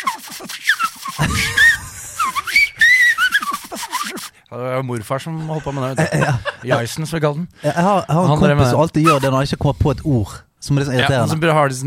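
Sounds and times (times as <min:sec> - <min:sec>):
whistle blown with warbling sliding pitch: 0:00.0 - 0:04.3, 0:09.0 - 0:09.3
laughter: 0:01.0 - 0:04.3, 0:05.3 - 0:07.0
speech: 0:01.2 - 0:01.7, 0:04.6 - 0:11.8.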